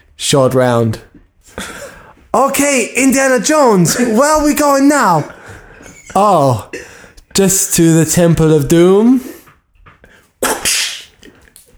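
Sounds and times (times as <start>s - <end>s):
speech: 0.2s - 1.6s, 2.3s - 5.4s, 6.1s - 9.3s
loud whip crack: 10.4s - 11.2s.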